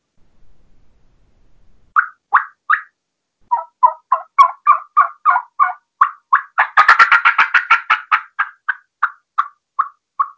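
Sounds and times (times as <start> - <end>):
hen turkey fly-down cackle played on a mouth call: 2.0 - 2.9, 3.5 - 10.3.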